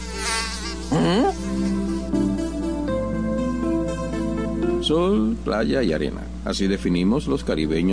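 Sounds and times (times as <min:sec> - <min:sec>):
mosquito whine: 0:00.0 - 0:04.6
speech: 0:04.9 - 0:07.9.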